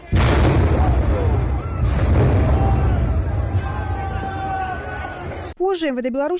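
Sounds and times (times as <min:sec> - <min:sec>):
crowd noise outdoors: 0:00.0 - 0:05.7
stun grenade blasts with ringing echo: 0:00.1 - 0:03.6
speech: 0:05.6 - 0:06.3.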